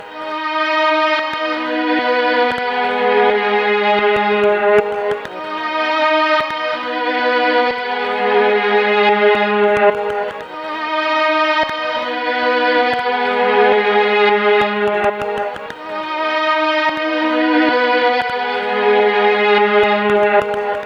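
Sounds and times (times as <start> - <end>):
pop rock strings with tape echo in A-flat minor: 0.0 - 20.8.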